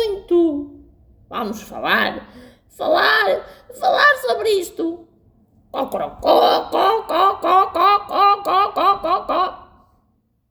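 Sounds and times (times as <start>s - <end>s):
speech: 1.3s - 5.1s, 5.7s - 9.5s
voice imitating rooster clucking: 5.8s - 9.8s.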